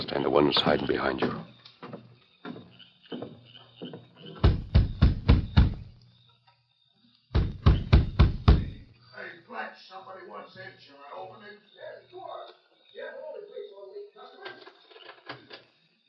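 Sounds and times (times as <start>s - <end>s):
speech: 0.1s - 1.5s
knocking on a door: 3.2s - 5.9s, 7.3s - 8.8s.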